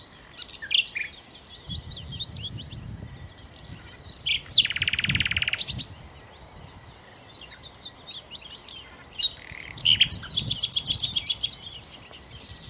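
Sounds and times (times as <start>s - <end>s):
common nightingale singing: 0.0s - 12.6s.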